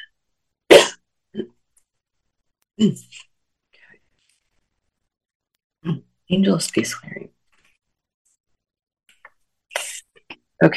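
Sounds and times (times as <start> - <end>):
person clearing throat: 0.7 - 1.5
speech: 1.3 - 1.6, 2.8 - 3.3, 5.8 - 7.4, 10.6 - 10.7.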